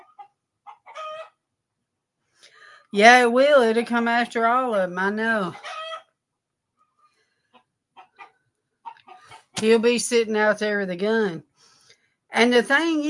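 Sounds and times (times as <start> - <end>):
chickens clucking and squawking: 0.0 - 1.6, 5.2 - 6.2, 7.0 - 9.6
speech: 2.9 - 5.7, 9.6 - 11.5, 12.3 - 13.0.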